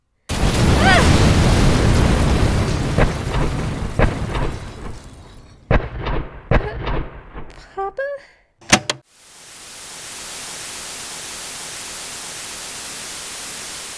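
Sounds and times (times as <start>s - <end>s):
gunshots cracking: 0.3s - 7.5s
heavy explosion rumbling: 0.3s - 7.5s.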